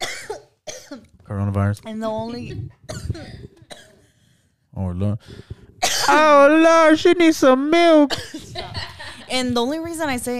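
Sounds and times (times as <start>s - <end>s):
person coughing: 0.0s - 1.1s, 2.9s - 4.0s, 5.8s - 6.4s, 8.1s - 8.6s
rasping throat-clearing cough: 0.0s - 1.1s, 2.7s - 4.0s, 5.8s - 6.2s, 8.1s - 8.6s
speech: 0.9s - 3.4s, 4.8s - 5.5s, 6.1s - 8.7s, 9.3s - 10.3s.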